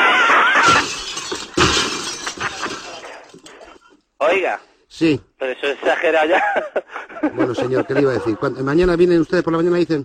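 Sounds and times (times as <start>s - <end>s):
laughter: 0.0s - 1.1s, 2.2s - 3.0s, 5.6s - 8.8s
window glass shattering: 0.4s - 3.6s
tinkling glass shards and debris: 0.6s - 3.7s
speech: 4.4s - 10.0s.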